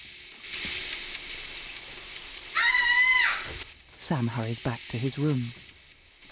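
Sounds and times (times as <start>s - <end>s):
shower water running: 0.0s - 6.3s
short high-pitched voice crying out: 2.6s - 3.5s
speech: 4.1s - 5.6s.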